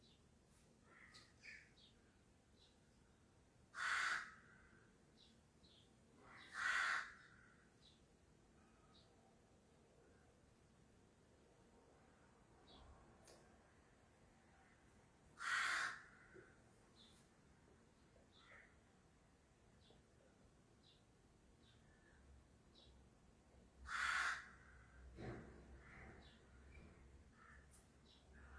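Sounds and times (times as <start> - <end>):
crows cawing loudly: 0.8 - 1.7, 3.7 - 4.9, 6.2 - 7.7, 15.4 - 16.6, 23.8 - 26.4, 27.3 - 27.8.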